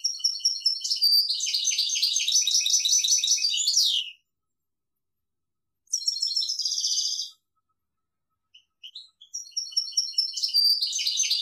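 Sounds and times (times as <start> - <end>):
European goldfinch singing: 0.0 - 4.2, 5.9 - 7.4, 8.5 - 11.4.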